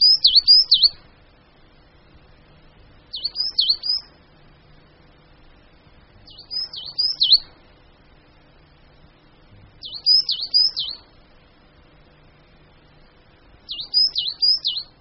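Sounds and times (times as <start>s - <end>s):
coal tit singing: 0.0s - 1.0s, 3.0s - 4.2s, 6.2s - 7.6s, 9.8s - 11.2s, 13.6s - 14.9s.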